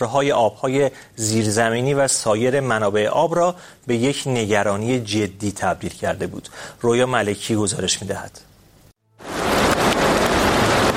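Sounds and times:
speech: 0.0 - 8.5
steady rain in drought-hit Iran: 9.2 - 10.9.

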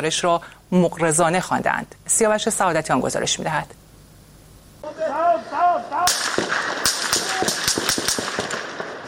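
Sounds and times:
speech: 0.0 - 3.8
burst of rapid gunfire: 6.1 - 9.0.

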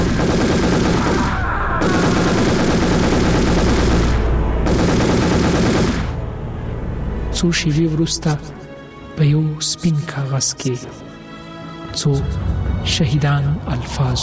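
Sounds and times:
rapid gunfire in continuous volleys: 0.0 - 6.2
speech: 7.4 - 8.6, 9.2 - 11.1, 12.0 - 14.2.

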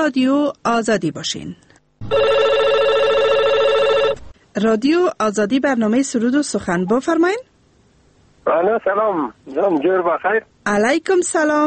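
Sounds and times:
speech: 0.0 - 2.6, 4.6 - 7.5, 8.4 - 11.6
telephone ringing with an electronic trill: 2.0 - 4.4.

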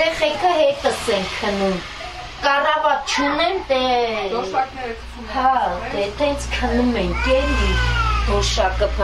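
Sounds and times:
speech: 0.2 - 9.0
cat meowing in a run-down drafty house: 7.1 - 8.3.

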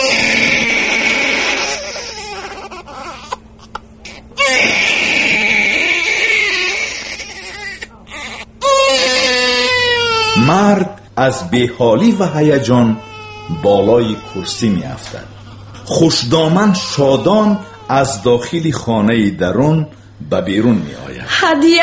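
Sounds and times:
newborn baby crying loudly in wailing bursts: 0.0 - 19.7
speech: 10.6 - 21.8.

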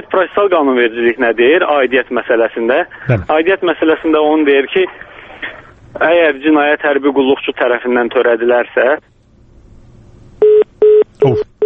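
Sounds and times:
speech: 0.0 - 9.1
short electronic beeps of a dropped mobile phone call: 10.4 - 11.6.

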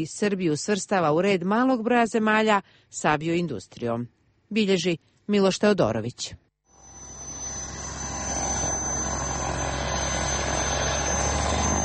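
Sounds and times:
speech: 0.0 - 6.4
propeller aircraft engine of a Lasta 95 trainer starting up and running: 6.8 - 11.8.

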